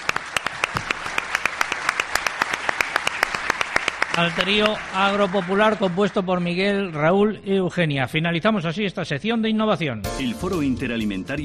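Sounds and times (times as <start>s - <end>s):
audience applause for a musical trio: 0.0s - 6.9s
speech: 4.2s - 11.4s.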